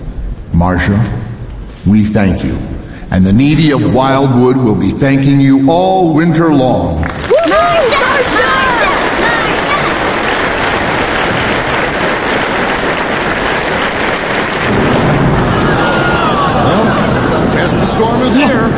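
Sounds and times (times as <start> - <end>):
speech: 0.6 - 1.2, 1.8 - 8.9, 17.9 - 18.7
crowd murmuring indistinctly: 7.3 - 11.3, 15.3 - 18.7
storm roaring: 7.8 - 18.7
dense rain: 8.2 - 18.7
deep thunder rumble: 10.0 - 18.7.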